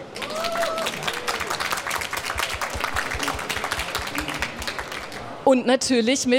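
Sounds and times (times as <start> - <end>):
live audience applauding: 0.0 - 5.4
faint whoops or voices: 0.2 - 1.5
speech: 5.5 - 6.3.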